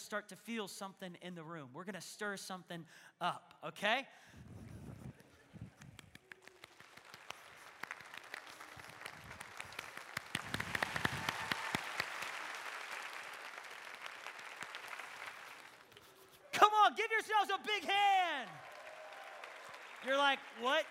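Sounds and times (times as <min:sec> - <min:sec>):
speech: 0:00.1 - 0:05.0, 0:16.9 - 0:18.7, 0:20.0 - 0:20.8
large audience imitating a rainstorm with hand snaps, taps and clapping: 0:06.2 - 0:16.4.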